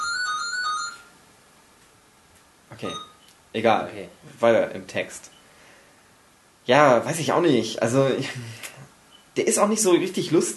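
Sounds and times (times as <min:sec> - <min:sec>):
telephone ringing with a bright electronic tone: 0:00.0 - 0:01.2
speech: 0:02.8 - 0:05.4, 0:06.7 - 0:08.7, 0:09.4 - 0:10.5.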